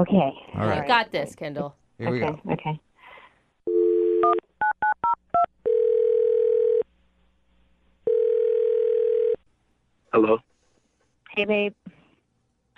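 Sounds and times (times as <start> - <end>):
speech: 0.0 - 2.9, 10.1 - 10.5, 11.4 - 12.0
phone dial tone: 3.7 - 4.4, 5.6 - 6.8, 8.1 - 9.4.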